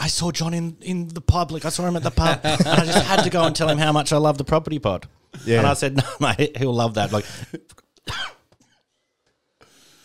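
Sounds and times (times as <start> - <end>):
speech: 0.0 - 8.4
laughter: 2.0 - 4.1, 7.0 - 7.6
throat clearing: 8.0 - 8.5
person coughing: 8.1 - 8.5.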